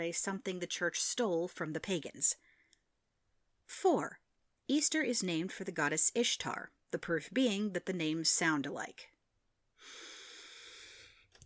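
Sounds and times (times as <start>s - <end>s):
speech: 0.0s - 2.5s, 3.7s - 9.1s, 9.8s - 10.0s
deep cleansing breath: 9.8s - 11.4s.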